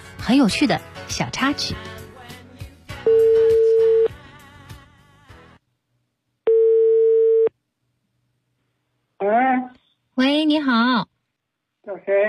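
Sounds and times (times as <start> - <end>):
music: 0.0 - 5.7
speech: 0.3 - 1.9, 10.5 - 11.1, 11.9 - 12.2
telephone ringback tones of a call connecting: 3.1 - 4.1, 6.5 - 7.5.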